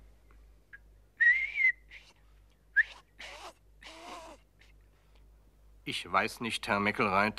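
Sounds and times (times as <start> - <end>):
person whistling a breathy tune: 1.2 - 2.2, 2.8 - 3.0
speech: 5.9 - 7.3.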